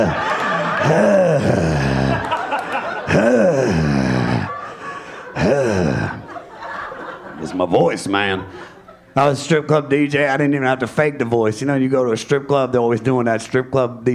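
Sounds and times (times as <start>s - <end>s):
laughter: 0.0s - 9.6s
speech: 0.8s - 1.9s, 7.6s - 14.1s
voice imitating heavy exaggerated breathing with groaning gasping tones: 0.8s - 2.3s, 3.1s - 6.3s.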